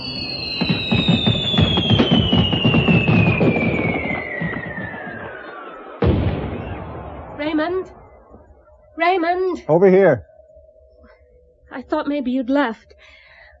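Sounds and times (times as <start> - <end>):
firework whistling: 0.0 - 9.1
speech: 9.2 - 10.3, 11.8 - 13.2.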